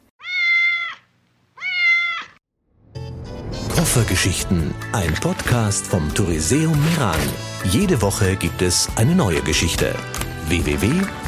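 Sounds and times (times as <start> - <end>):
cat meowing: 0.2 - 2.4
speech: 3.8 - 11.2.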